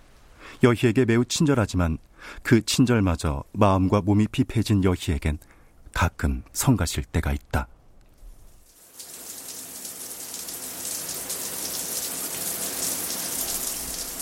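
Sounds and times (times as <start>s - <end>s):
speech: 0.6s - 7.8s
shower water spraying: 8.4s - 14.2s.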